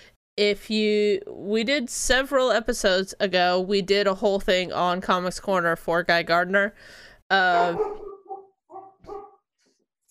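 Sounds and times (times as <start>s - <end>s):
speech: 0.4s - 8.1s
dog barking: 7.6s - 9.4s.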